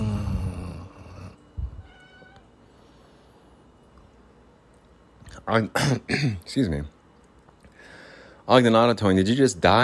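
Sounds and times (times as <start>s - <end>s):
faint quieter tones: 0.0s - 4.9s
low noise: 0.0s - 9.8s
cat meowing: 1.8s - 2.5s
speech: 5.4s - 7.0s, 8.5s - 9.8s.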